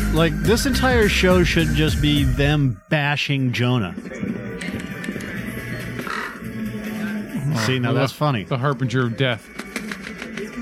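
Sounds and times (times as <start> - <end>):
speech: 0.1 - 4.4, 7.6 - 9.6
dense steady noise: 0.2 - 10.6
crow cawing inside a store: 6.0 - 6.6.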